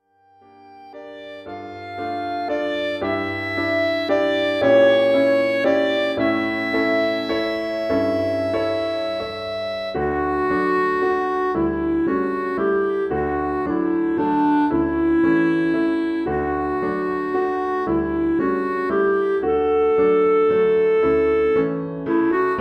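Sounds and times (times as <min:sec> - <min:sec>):
clarinet in Bb solo: 0:00.3 - 0:22.5.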